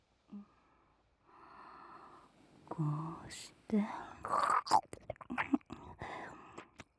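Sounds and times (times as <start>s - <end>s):
speech: 2.7s - 4.9s
wet chewing and mouth sounds to build up saliva: 4.3s - 5.8s.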